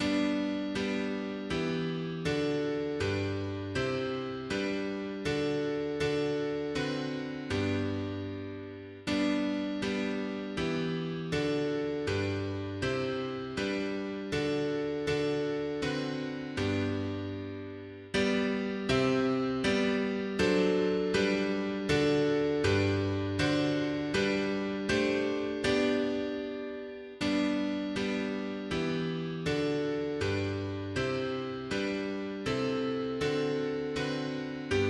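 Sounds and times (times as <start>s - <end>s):
mono piano piece: 0.0s - 34.8s.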